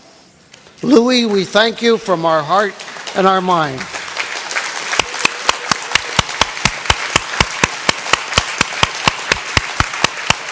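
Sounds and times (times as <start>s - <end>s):
speech: 0.8s - 3.9s
standing audience applauding: 2.3s - 10.4s
one sharp clap in an evenly spaced rhythm: 2.5s - 10.4s.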